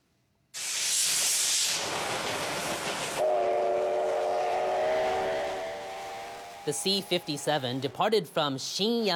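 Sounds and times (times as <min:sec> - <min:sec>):
steam locomotive hissing steam: 0:00.6 - 0:08.0
steam locomotive chuffing rumble departing on test run: 0:01.5 - 0:08.0
long sustained steam locomotive whistle: 0:03.0 - 0:07.9
speech: 0:06.6 - 0:09.1.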